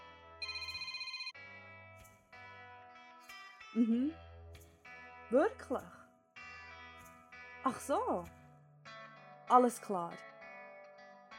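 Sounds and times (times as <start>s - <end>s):
telephone ringtone with bright electronic melody: 0.4s - 1.4s
speech: 3.8s - 4.3s, 5.3s - 6.0s, 7.6s - 8.4s, 9.5s - 10.3s.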